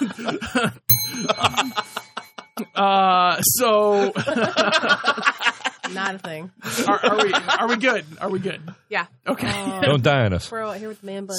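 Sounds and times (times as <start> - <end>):
speech: 0.0 - 1.9, 2.8 - 5.3, 5.9 - 11.3
people talking and laughing: 0.0 - 2.2, 2.8 - 11.3
bright metallic bell ringing: 0.9 - 2.8.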